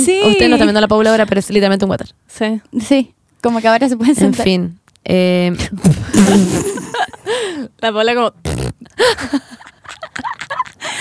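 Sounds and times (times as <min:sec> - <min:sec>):
speech: 0:00.0 - 0:09.6
person making wet grunting fart-like noises: 0:05.8 - 0:07.3, 0:08.4 - 0:08.9
burst of noise: 0:06.1 - 0:07.2
laughter: 0:09.1 - 0:10.9.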